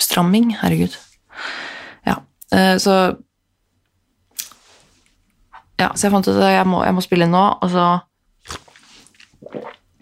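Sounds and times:
speech: 0.2s - 3.3s, 5.8s - 8.6s
person slurping a drink at the microphone: 8.4s - 10.0s.

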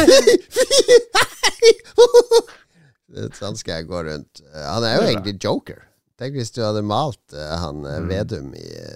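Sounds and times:
speech: 0.0s - 1.0s, 3.5s - 8.9s
voice imitating a party leader's laugh with voiced ha bursts: 0.0s - 2.6s.

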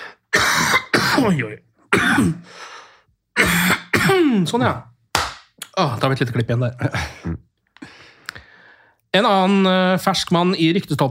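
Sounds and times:
person clearing throat: 0.4s - 2.4s, 3.4s - 4.5s
person coughing: 0.4s - 2.5s, 3.4s - 4.5s
speech: 1.2s - 2.7s, 4.1s - 4.9s, 5.8s - 7.5s, 9.2s - 11.0s.

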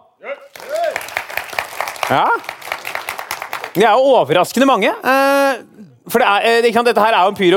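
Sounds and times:
live audience clapping: 0.5s - 4.1s
speech: 2.1s - 2.6s, 3.7s - 7.5s.

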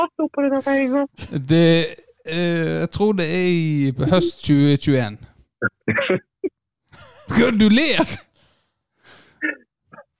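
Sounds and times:
speech: 0.0s - 6.3s, 7.3s - 8.3s
coughing and throat clearing: 5.6s - 6.6s.

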